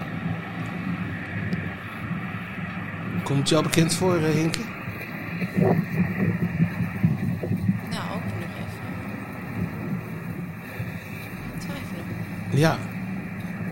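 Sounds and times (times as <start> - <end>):
passing street traffic rumble heard from the roadside: 0.0 - 13.7
speech: 3.3 - 4.8, 12.6 - 12.9.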